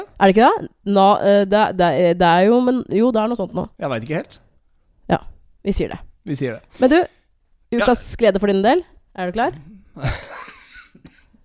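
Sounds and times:
speech: 0:00.2 - 0:04.4, 0:05.1 - 0:10.3
single harsh forceful cough with raspy tail: 0:10.0 - 0:11.4.

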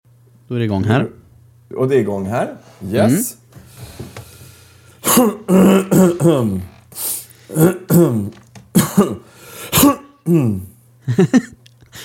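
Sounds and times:
speech: 0:00.5 - 0:04.0, 0:05.2 - 0:11.6
throat clearing: 0:05.0 - 0:06.7, 0:07.5 - 0:10.8.

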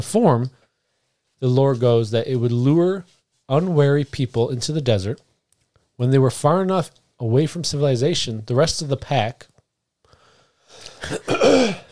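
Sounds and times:
speech: 0:00.0 - 0:00.6, 0:01.4 - 0:05.2, 0:06.0 - 0:09.5, 0:10.7 - 0:11.9
raspy throat clearing: 0:10.9 - 0:11.9.

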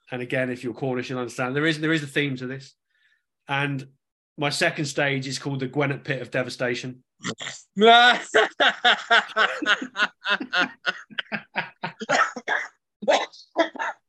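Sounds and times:
speech: 0:00.1 - 0:02.8, 0:03.5 - 0:11.0
laughter: 0:07.8 - 0:12.5
man coughing in harsh sputtering bursts: 0:09.5 - 0:12.8.

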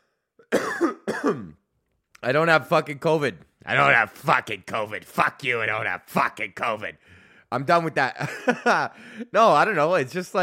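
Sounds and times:
person with a chest cold coughing and clearing throat: 0:00.4 - 0:01.6
speech: 0:02.2 - 0:10.4
laughter: 0:08.1 - 0:09.3.

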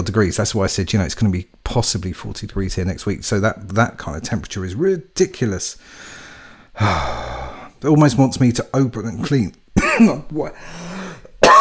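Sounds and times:
speech: 0:00.0 - 0:06.1, 0:06.8 - 0:11.5
throaty cough or throat-clearing: 0:09.8 - 0:10.3, 0:11.3 - 0:11.5.

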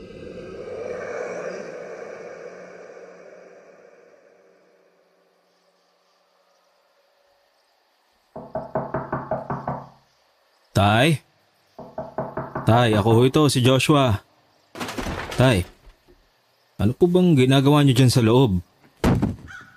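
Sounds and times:
low rumbling noise: 0:00.0 - 0:05.4
firm loud knocks on a front door: 0:08.4 - 0:10.0, 0:11.8 - 0:13.1
speech: 0:10.8 - 0:11.3, 0:12.7 - 0:14.3, 0:15.4 - 0:15.8, 0:16.8 - 0:18.7.

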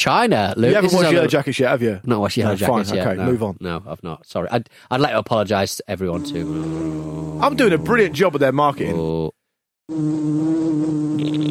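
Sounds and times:
speech: 0:00.0 - 0:11.4
wasp buzzing: 0:06.2 - 0:08.3, 0:09.9 - 0:11.4.

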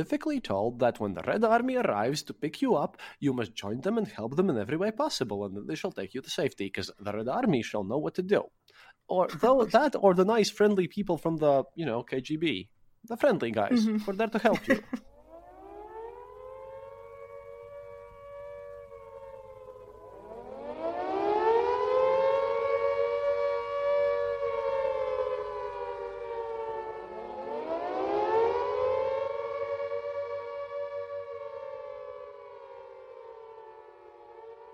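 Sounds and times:
speech: 0:00.0 - 0:15.1
laughter: 0:13.7 - 0:15.0
civil defense air raid siren wailing: 0:15.1 - 0:34.7.

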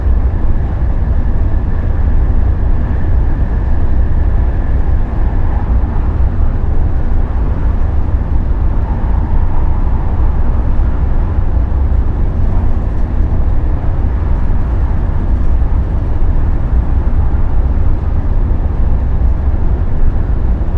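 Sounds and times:
faint whine: 0:00.0 - 0:20.7
sleeper train rumbling with electric motors humming: 0:00.0 - 0:20.7.

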